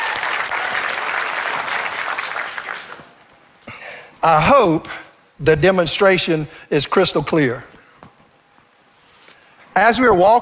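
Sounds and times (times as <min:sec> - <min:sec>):
crowd of people clapping: 0:00.0 - 0:03.3
speech: 0:04.2 - 0:07.7, 0:09.8 - 0:10.3.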